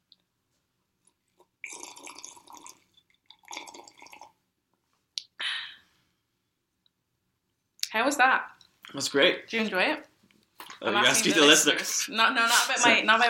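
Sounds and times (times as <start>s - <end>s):
sparkling water gulps: 1.6s - 4.4s
speech: 8.0s - 10.1s, 10.8s - 13.2s.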